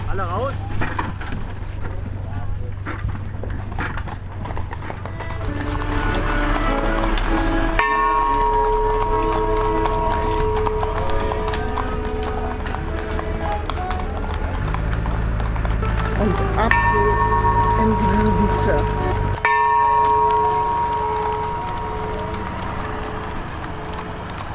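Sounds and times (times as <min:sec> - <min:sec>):
people talking: 0:00.0 - 0:03.3, 0:05.2 - 0:15.2, 0:15.8 - 0:23.4
horse hooves clip-clopping as a horse-drawn carriage moves forward: 0:00.0 - 0:24.5
ringing bell tones: 0:06.7 - 0:13.7, 0:15.8 - 0:24.5.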